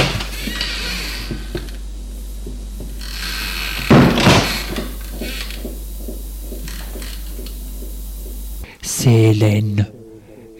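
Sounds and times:
door hinges creaking: 0.0s - 1.8s, 2.9s - 5.7s
speech: 9.1s - 10.0s.

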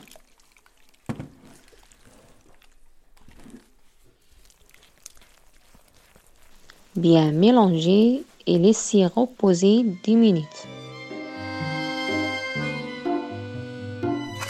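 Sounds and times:
water poured gradually into Moroccan bread dough: 0.0s - 8.6s
speech: 7.0s - 10.7s.

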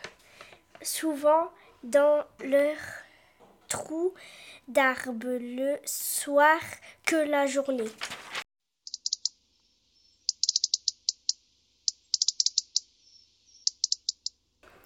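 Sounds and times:
speech: 0.9s - 3.0s, 3.7s - 8.2s
European robin singing: 8.9s - 14.4s.

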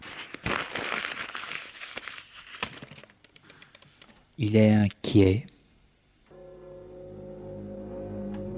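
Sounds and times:
letter paper being crumpled: 0.0s - 4.1s
speech: 4.4s - 5.5s.

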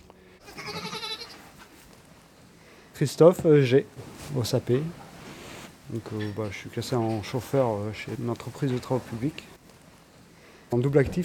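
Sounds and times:
sheep bleating: 0.4s - 1.4s
speech: 3.0s - 5.0s, 5.9s - 9.5s, 10.7s - 11.2s.

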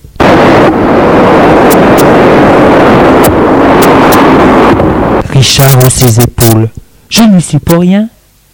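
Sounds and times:
rough swelling sea roaring: 0.0s - 5.6s
gusting wind as the weather changes: 0.0s - 8.5s
speech: 5.4s - 8.1s.

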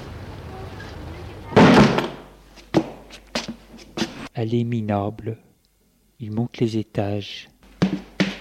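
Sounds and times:
heavy wooden door thud: 1.5s - 2.9s
speech: 4.4s - 5.5s, 6.2s - 8.1s.

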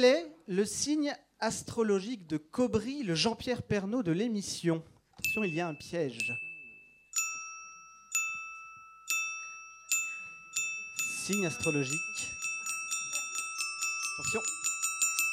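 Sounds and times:
speech: 0.0s - 6.5s, 11.3s - 12.3s, 14.2s - 14.6s
bright quiz-show chime: 5.2s - 15.3s.

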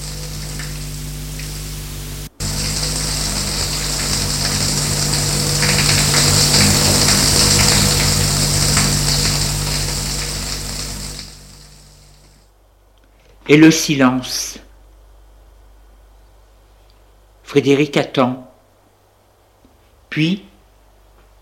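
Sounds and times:
shower running with dense hissing spray: 0.0s - 12.4s
speech: 13.5s - 14.6s, 17.5s - 18.5s, 20.1s - 20.5s.

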